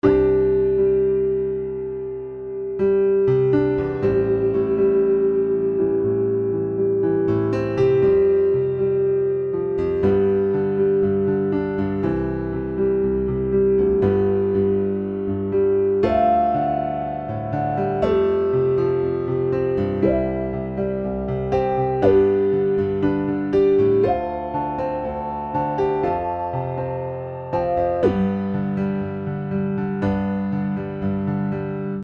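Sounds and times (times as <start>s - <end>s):
piano through filters: 0.0s - 32.0s.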